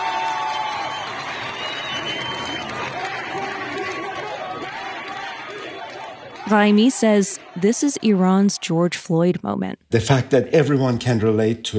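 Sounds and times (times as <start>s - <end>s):
dense outdoor street crowd shouting and cheering: 0.0s - 8.8s
speech: 6.5s - 11.7s.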